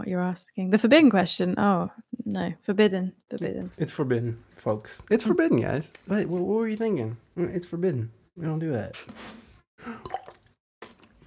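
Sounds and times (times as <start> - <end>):
speech: 0.1 - 10.2
person gulping water: 3.4 - 6.8, 8.7 - 11.2.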